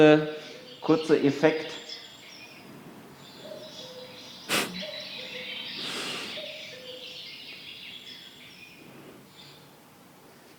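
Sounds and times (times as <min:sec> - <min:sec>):
speech: 0:00.0 - 0:01.8
cuckoo calling two-note cry: 0:01.7 - 0:08.8.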